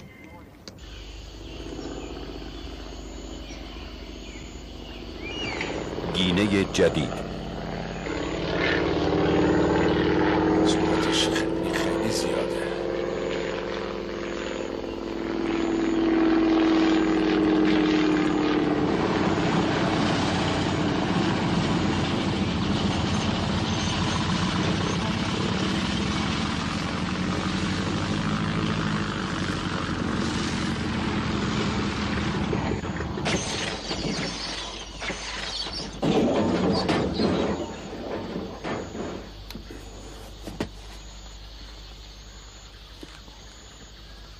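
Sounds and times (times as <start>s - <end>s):
airplane engine roar during landing: 0.0s - 44.3s
speech: 6.2s - 7.2s
airplane wheels bumping on landing: 36.0s - 41.0s.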